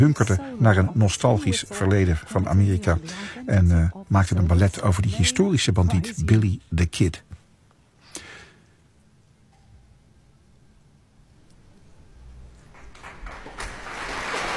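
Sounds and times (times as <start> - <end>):
speech: 0.0 - 7.3
concert audience applauding the conductor: 12.6 - 14.5.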